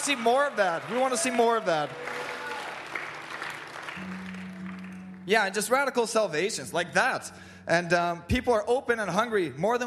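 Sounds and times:
speech: 0:00.0 - 0:02.1, 0:04.0 - 0:04.2, 0:05.3 - 0:09.8
audience applause: 0:00.0 - 0:05.2.

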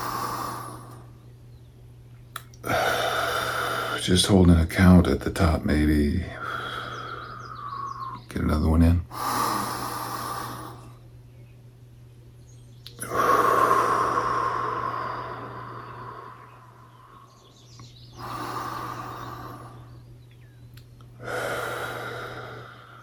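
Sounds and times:
deep inhales through the nose and exhales through the mouth: 0:00.0 - 0:01.2, 0:02.4 - 0:04.4, 0:06.2 - 0:08.3, 0:09.0 - 0:11.0, 0:12.9 - 0:20.2, 0:21.1 - 0:23.0
low steady hum: 0:00.0 - 0:23.0
speech: 0:04.0 - 0:06.6, 0:08.4 - 0:09.3.

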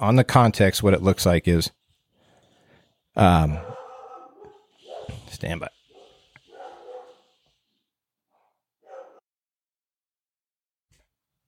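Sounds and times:
speech: 0:00.0 - 0:01.8, 0:03.2 - 0:03.7, 0:05.3 - 0:05.8
dogs barking: 0:03.5 - 0:05.2, 0:05.9 - 0:07.3, 0:08.4 - 0:09.2
dog yelping: 0:03.6 - 0:05.1, 0:05.9 - 0:07.2, 0:08.8 - 0:09.2.

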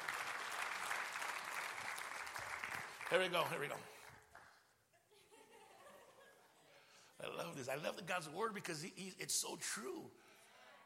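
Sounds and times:
applause from a large group: 0:00.0 - 0:04.6
speech: 0:03.1 - 0:04.0, 0:07.2 - 0:10.4
laughter: 0:05.0 - 0:06.7.

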